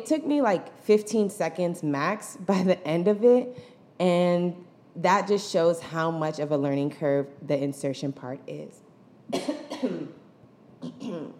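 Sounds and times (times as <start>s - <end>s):
speech: 0.0s - 10.2s, 10.8s - 11.3s
person coughing harshly: 9.3s - 11.3s.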